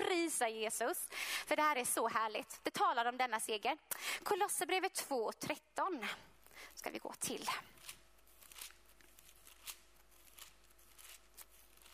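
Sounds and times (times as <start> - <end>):
speech: 0.3 - 8.0
Bible pages being flipped through: 7.8 - 11.9.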